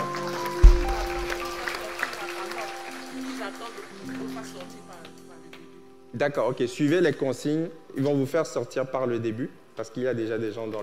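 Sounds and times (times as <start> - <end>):
audience clapping: 0.0 - 5.8
sustained low musical tones: 0.0 - 6.2
speech: 6.2 - 10.8.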